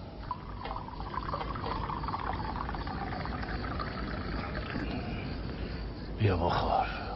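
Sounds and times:
coffee pouring into a cup: 0:00.0 - 0:05.0
speech: 0:06.2 - 0:07.0.

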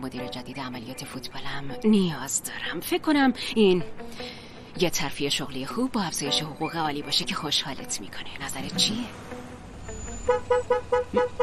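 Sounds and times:
speech: 0:00.0 - 0:09.3, 0:10.3 - 0:11.4
car horn honked by a friend: 0:10.0 - 0:11.4.

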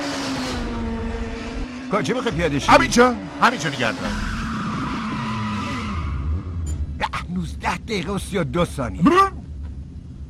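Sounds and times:
car tires skidding under hard braking: 0:00.0 - 0:07.0
speech: 0:01.9 - 0:04.4, 0:07.9 - 0:09.4
low car engine rumble: 0:06.1 - 0:10.2.

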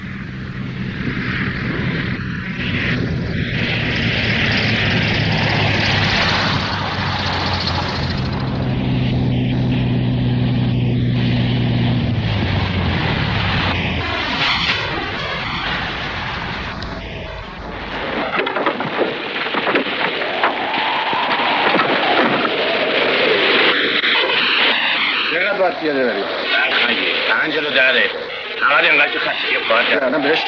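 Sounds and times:
propeller plane engine droning as it comes in to land: 0:00.0 - 0:30.4.

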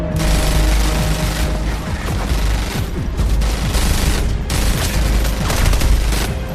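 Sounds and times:
heavy gunfire from an exchange of fire: 0:00.2 - 0:06.4.

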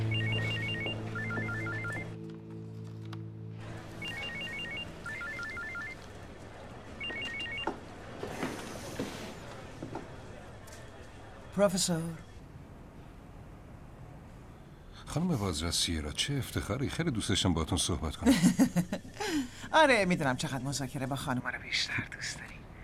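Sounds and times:
telephone ringing in trilling bursts: 0:00.0 - 0:02.2, 0:03.7 - 0:08.3
speech: 0:11.6 - 0:12.3, 0:15.1 - 0:22.5
laughter: 0:18.2 - 0:19.5.

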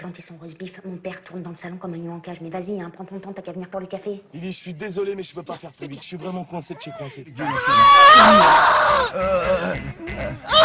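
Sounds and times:
speech: 0:00.0 - 0:10.6
laughter: 0:06.1 - 0:10.6
woman screaming: 0:07.4 - 0:09.2, 0:10.5 - 0:10.6.

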